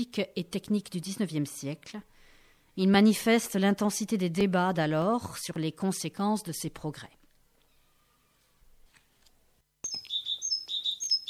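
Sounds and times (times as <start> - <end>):
speech: 0.0 - 2.1, 2.8 - 7.2
great tit song: 9.8 - 11.2.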